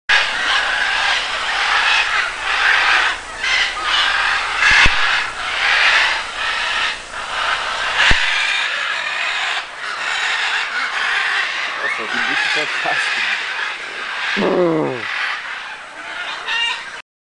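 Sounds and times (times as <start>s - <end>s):
cassowary call: 0.1s - 17.0s.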